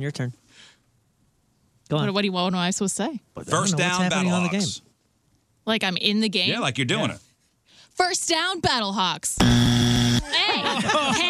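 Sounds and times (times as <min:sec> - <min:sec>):
speech: 0:00.0 - 0:00.8, 0:01.9 - 0:04.9, 0:05.6 - 0:07.3, 0:08.0 - 0:09.7, 0:10.3 - 0:11.2
electronic buzzer at a football game: 0:09.4 - 0:10.3
laughter: 0:10.2 - 0:11.2.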